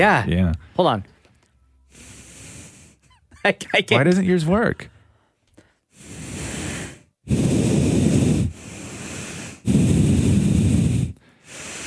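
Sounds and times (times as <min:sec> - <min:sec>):
speech: 0:00.0 - 0:01.1, 0:03.4 - 0:04.9, 0:07.3 - 0:07.6
quiet inhales: 0:00.6 - 0:03.1, 0:04.9 - 0:11.8
loud rushing exhales through the nose: 0:01.9 - 0:03.0, 0:05.9 - 0:11.8.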